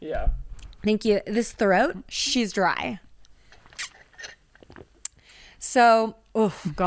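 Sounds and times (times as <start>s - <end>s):
speech: 0.1s - 3.1s, 5.6s - 6.8s
sipping water through a straw: 3.5s - 4.8s.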